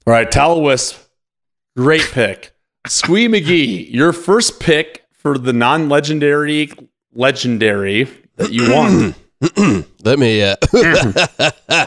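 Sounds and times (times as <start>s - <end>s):
speech: 0.1s - 1.0s, 1.8s - 11.8s
throat clearing: 8.4s - 10.0s
laughter: 10.6s - 11.8s.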